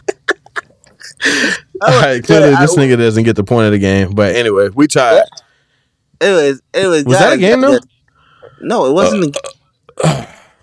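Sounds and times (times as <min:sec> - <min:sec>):
speech: 0:01.0 - 0:05.4, 0:06.2 - 0:07.9, 0:08.6 - 0:10.3
person burping: 0:09.0 - 0:10.6.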